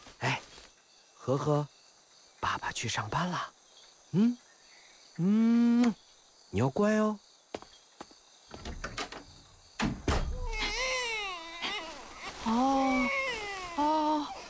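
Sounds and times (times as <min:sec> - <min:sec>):
speech: 0:01.3 - 0:01.8, 0:02.5 - 0:04.4, 0:05.2 - 0:07.2
infant crying in wailing bursts: 0:10.4 - 0:14.4.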